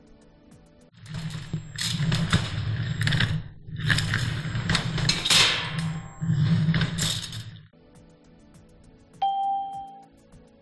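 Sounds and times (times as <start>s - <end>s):
heavy furniture scraping and dragging across a floor: 1.0s - 7.7s.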